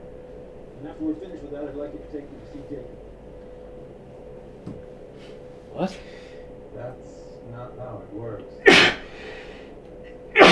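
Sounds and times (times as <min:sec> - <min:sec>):
speech: 0:00.8 - 0:03.1, 0:05.8 - 0:06.2, 0:06.8 - 0:09.0
person sneezing with breathy intake: 0:08.6 - 0:09.1, 0:10.3 - 0:10.5.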